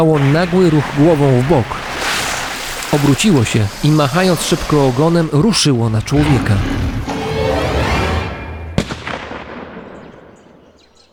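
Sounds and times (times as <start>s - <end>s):
speech: 0.0s - 1.9s, 2.9s - 7.0s
rushing rumbling noise: 0.0s - 9.6s
gunshot fired at a crocodile: 8.8s - 10.7s.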